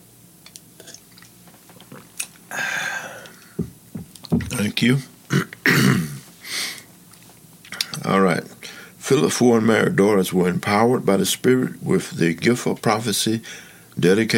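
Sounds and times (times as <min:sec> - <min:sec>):
wet mouth clicks: 0:00.4 - 0:02.4
person sipping water: 0:00.5 - 0:04.3
person swallowing water: 0:00.8 - 0:04.6
speech: 0:04.4 - 0:05.1, 0:09.1 - 0:14.3
throat clearing: 0:05.3 - 0:06.2.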